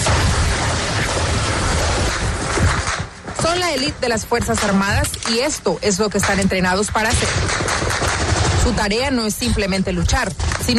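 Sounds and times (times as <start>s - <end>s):
distant rapid gunfire in battle in Kapisa province Afghanistan: 0.0s - 3.5s, 6.2s - 9.1s
speech: 3.6s - 7.8s, 8.7s - 10.7s.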